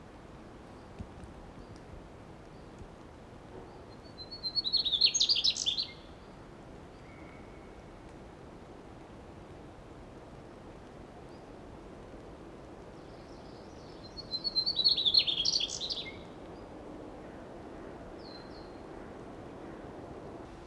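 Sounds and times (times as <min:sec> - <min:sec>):
steady background hiss: 0:00.0 - 0:20.6
Mugimaki flycatcher song: 0:04.1 - 0:06.1, 0:13.8 - 0:16.2.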